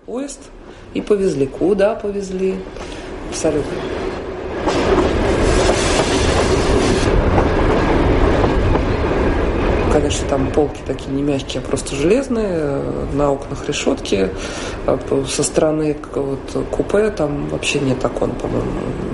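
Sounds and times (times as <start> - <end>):
train rolling along the tracks: 0.0 - 19.1
speech: 0.1 - 4.8, 10.0 - 19.1.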